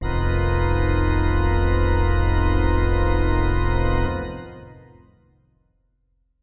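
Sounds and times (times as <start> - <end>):
heavy pipe organ synth keys in F: 0.0 - 5.0.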